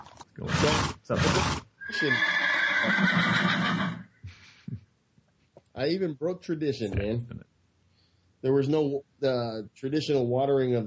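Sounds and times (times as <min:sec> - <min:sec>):
horse whinnying sound effect: 0:00.4 - 0:04.2
speech: 0:00.6 - 0:03.9, 0:05.8 - 0:07.4, 0:08.4 - 0:10.8.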